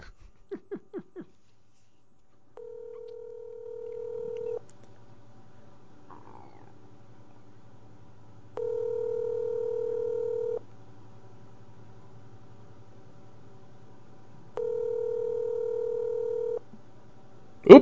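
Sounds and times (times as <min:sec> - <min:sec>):
laughter: 0:00.0 - 0:01.4
faint low hum: 0:00.0 - 0:17.8
telephone number being dialed on speakerphone: 0:02.6 - 0:04.6, 0:08.6 - 0:10.6, 0:14.6 - 0:16.6.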